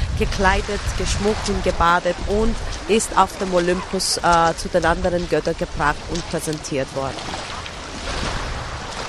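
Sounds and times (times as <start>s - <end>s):
seawater washing against a shore: 0.0s - 9.0s
speech: 0.2s - 7.6s.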